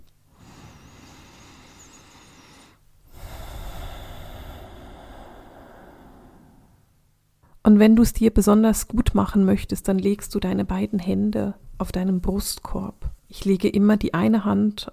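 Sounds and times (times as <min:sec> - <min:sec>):
deep breathing in and out: 0:00.3 - 0:07.0
speech: 0:07.6 - 0:14.9.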